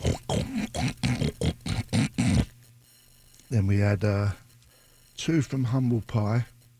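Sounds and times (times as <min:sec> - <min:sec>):
pig grunting and oinking: 0:00.0 - 0:02.5
speech: 0:03.5 - 0:04.4, 0:05.2 - 0:06.5.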